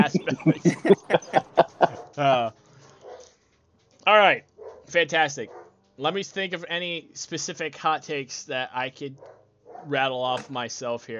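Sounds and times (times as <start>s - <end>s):
speech: 0.0s - 1.2s, 4.2s - 11.1s
laughter: 0.0s - 2.5s
dog barking: 2.9s - 3.4s, 4.6s - 5.8s, 9.2s - 10.0s.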